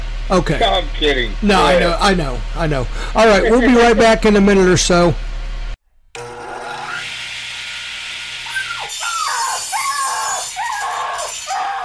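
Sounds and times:
speech: 0.3 - 5.3
loud sawing: 6.2 - 11.8
shrill squeaky tones: 8.5 - 11.8.

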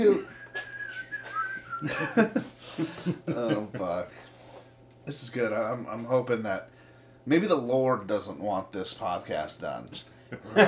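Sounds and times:
speech: 0.0 - 0.3, 1.8 - 4.3, 5.0 - 10.6
thin high whistle blowing: 0.3 - 1.9
laughter: 1.8 - 4.0, 10.4 - 10.6.

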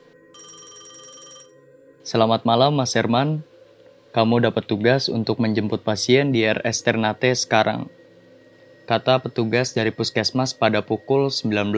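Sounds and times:
telephone bell ringing: 0.3 - 1.6
speech: 2.1 - 3.5, 4.2 - 8.0, 8.9 - 11.7.

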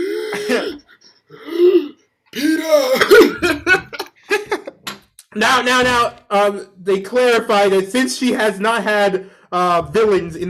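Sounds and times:
voice imitating a dying woman's heavy labored gasping for breath: 0.0 - 3.7
laughter: 3.1 - 4.8
speech: 5.4 - 10.4.

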